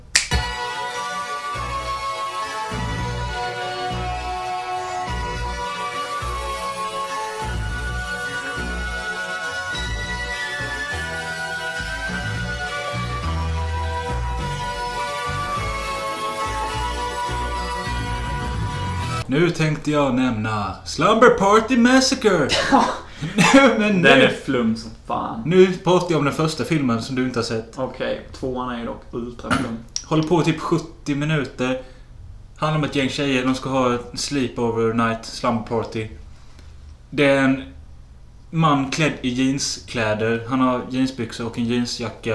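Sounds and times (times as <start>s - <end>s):
heavy dense end-credits song from a film: 0.0s - 19.3s
speech: 19.3s - 31.9s, 32.6s - 36.2s, 37.1s - 37.8s, 38.5s - 42.3s
laughter: 22.5s - 24.4s.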